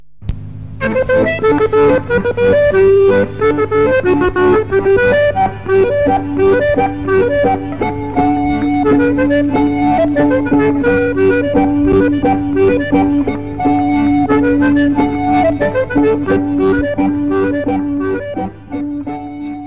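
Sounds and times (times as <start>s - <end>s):
Bulgarian music: 0.7s - 19.6s.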